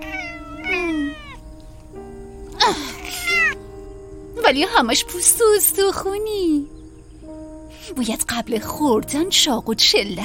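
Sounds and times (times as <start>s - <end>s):
cat meowing: 0.0s - 1.5s, 2.6s - 3.6s
speech: 2.7s - 2.9s, 4.5s - 6.8s, 7.9s - 10.2s.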